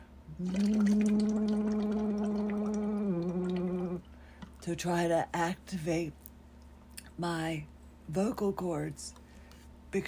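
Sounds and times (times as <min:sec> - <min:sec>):
bubbling from blowing through a straw into a cup of water: 0:00.3 - 0:04.1
sustained hummed tone: 0:00.3 - 0:04.3
speech: 0:00.4 - 0:01.2, 0:04.7 - 0:06.2, 0:07.2 - 0:09.2.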